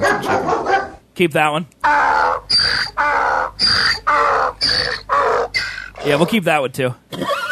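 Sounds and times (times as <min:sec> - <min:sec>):
speech: 0:01.2 - 0:02.0, 0:06.0 - 0:07.3
bird call sound effect with harsh squawking: 0:01.8 - 0:06.4.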